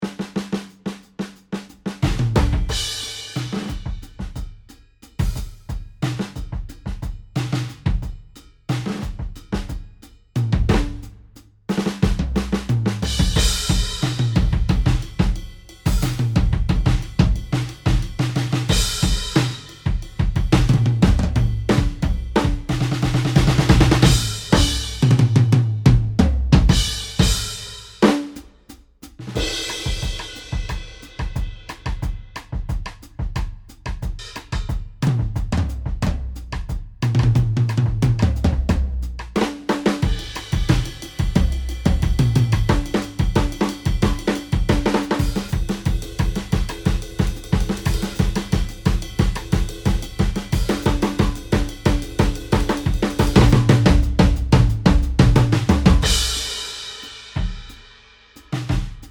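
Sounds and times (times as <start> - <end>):
drums kickback: 0.0 - 59.0.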